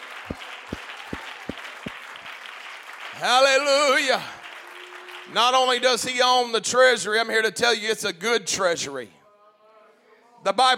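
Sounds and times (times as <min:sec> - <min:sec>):
congregation clapping hands during a lively church service: 0:00.0 - 0:06.3
speech: 0:03.2 - 0:04.4, 0:05.3 - 0:09.2, 0:10.4 - 0:10.7.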